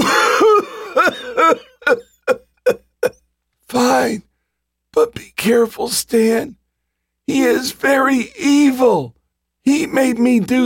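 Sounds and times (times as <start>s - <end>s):
person coughing: 0.0s - 3.2s
speech: 4.0s - 4.3s, 5.0s - 6.6s, 7.3s - 10.6s.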